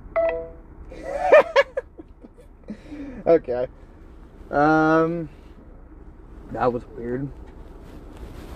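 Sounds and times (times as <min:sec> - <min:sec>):
telephone keypad beep on a work phone: 0:00.2 - 0:00.6
person laughing or chuckling: 0:00.9 - 0:02.4
speech: 0:03.2 - 0:03.9, 0:04.5 - 0:05.4, 0:06.5 - 0:07.4.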